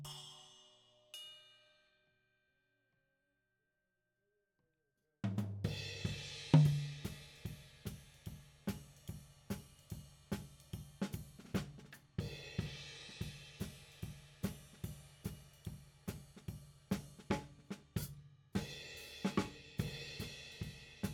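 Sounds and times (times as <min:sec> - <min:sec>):
tom drum: 0:05.3 - 0:21.1.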